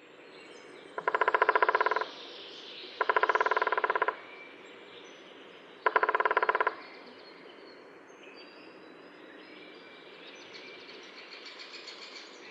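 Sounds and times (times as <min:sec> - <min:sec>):
middle spotted woodpecker drumming: 0:01.0 - 0:02.2, 0:03.0 - 0:04.3, 0:05.8 - 0:06.8.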